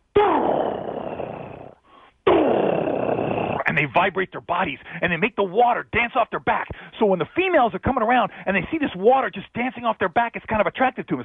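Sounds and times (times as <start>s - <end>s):
voice imitating a male alligator's breeding-season bellow: 0.1s - 3.8s
speech: 3.8s - 11.2s.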